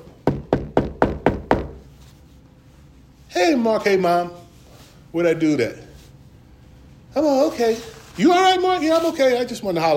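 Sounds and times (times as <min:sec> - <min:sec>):
sharp solid knocks on a door: 0:00.2 - 0:01.8
speech: 0:03.4 - 0:04.4, 0:05.1 - 0:05.9, 0:07.1 - 0:09.9.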